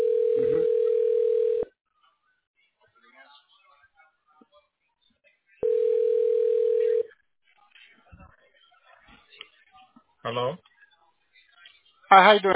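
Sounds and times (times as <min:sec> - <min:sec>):
telephone ringback tone: 0:00.0 - 0:01.7, 0:05.6 - 0:07.0
faint murmurs: 0:01.9 - 0:12.5
speech: 0:10.3 - 0:10.7, 0:12.1 - 0:12.5.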